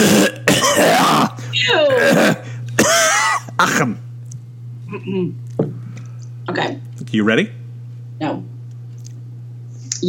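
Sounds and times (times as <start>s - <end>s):
person clearing throat: 0.0s - 4.0s
speech: 5.0s - 5.4s, 6.5s - 7.6s, 8.2s - 8.5s.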